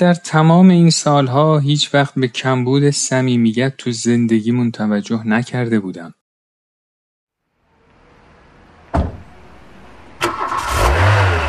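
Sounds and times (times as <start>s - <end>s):
speech: 0.0s - 6.2s
car engine starting with a loud rev: 7.6s - 11.4s
sharp thumps: 8.9s - 10.7s.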